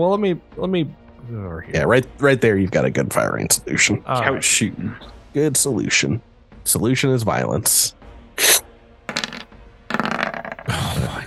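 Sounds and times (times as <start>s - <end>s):
speech: 0.0s - 8.6s
dice rolling across a hard tabletop: 9.1s - 10.7s.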